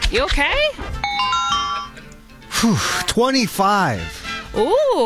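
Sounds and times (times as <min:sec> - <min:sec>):
speech: 0:00.1 - 0:00.9, 0:02.6 - 0:05.0
quick swooping electronic tone dipping in pitch: 0:01.0 - 0:02.0
telephone ringing on a caller line: 0:01.0 - 0:02.1.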